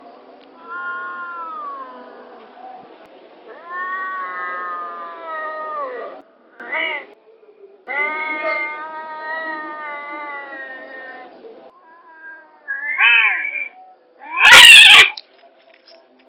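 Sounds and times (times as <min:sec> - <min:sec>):
cats mating calls: 0:00.6 - 0:02.3, 0:03.5 - 0:07.2, 0:07.9 - 0:15.2.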